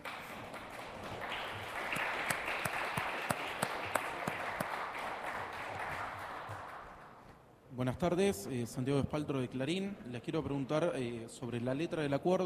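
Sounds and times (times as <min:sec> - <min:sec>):
audience applauding: 0:00.0 - 0:07.2
speech: 0:07.8 - 0:12.4.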